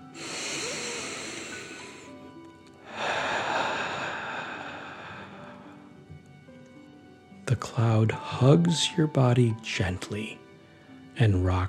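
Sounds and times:
person breathing forcefully in and out imitating a dragon: 0:00.1 - 0:02.1, 0:02.9 - 0:05.8
speech: 0:07.5 - 0:10.4, 0:11.2 - 0:11.6.

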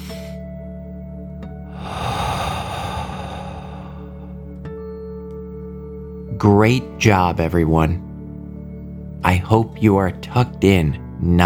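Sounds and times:
soft steady tonal music drone: 0:00.0 - 0:09.4
slow deep breath in a guided bedtime relaxation exercise: 0:01.6 - 0:04.6
speech: 0:06.4 - 0:08.0, 0:09.4 - 0:11.4.

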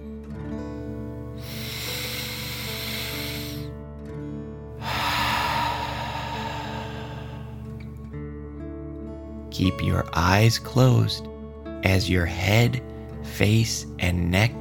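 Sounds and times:
soft sustained music bed: 0:00.0 - 0:14.5
deep breath in and out during a guided relaxation: 0:00.6 - 0:07.9
speech: 0:09.6 - 0:14.5.

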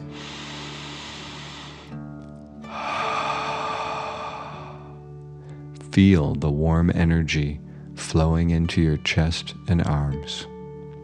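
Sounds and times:
deep dragon breath in and out during a guided breathing exercise: 0:00.0 - 0:02.0, 0:02.6 - 0:05.6
soft sustained music: 0:00.0 - 0:11.0
speech: 0:06.0 - 0:10.5.

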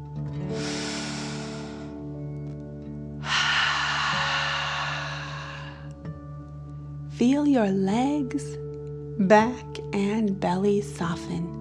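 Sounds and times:
soft steady musical drone: 0:00.0 - 0:11.5
slow breathy inhale: 0:00.4 - 0:02.2, 0:03.2 - 0:06.0
forceful exhale through mouth: 0:00.5 - 0:02.0, 0:03.2 - 0:05.9
speech: 0:07.2 - 0:08.6, 0:09.2 - 0:11.5.

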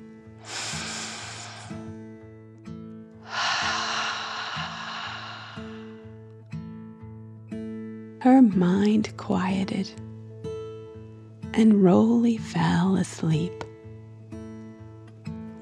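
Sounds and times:
deep slow breath in and long rushing exhale in a children's breathing exercise: 0:00.4 - 0:02.0, 0:03.2 - 0:06.2
speech: 0:08.2 - 0:10.0, 0:11.6 - 0:13.6.

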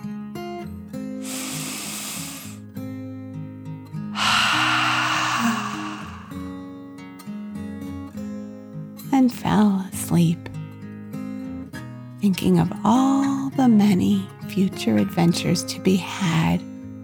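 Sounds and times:
deep breath in and out: 0:01.2 - 0:02.6, 0:04.2 - 0:06.6
speech: 0:09.2 - 0:10.5, 0:12.2 - 0:16.7
soft steady music: 0:12.2 - 0:17.0.

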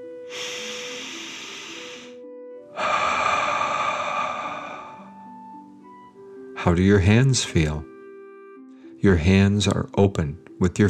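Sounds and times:
deep breathing in and out in a relaxation exercise: 0:00.2 - 0:05.6
speech: 0:06.6 - 0:07.9, 0:09.0 - 0:10.8.

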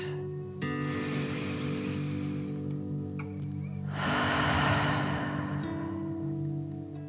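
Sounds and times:
gentle sustained musical drone: 0:00.0 - 0:07.0
deep breathing in through the nose and out: 0:00.7 - 0:03.0, 0:03.7 - 0:06.8.

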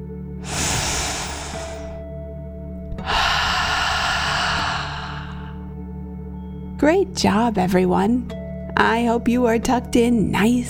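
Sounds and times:
deep breath in and out during a relaxation exercise: 0:00.4 - 0:02.0, 0:03.0 - 0:05.8
speech: 0:06.8 - 0:10.6.

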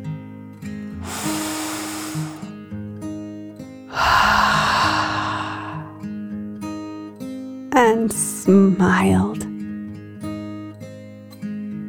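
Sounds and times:
deep breaths in and out: 0:01.0 - 0:02.5, 0:03.9 - 0:06.1
speech: 0:08.1 - 0:09.4.

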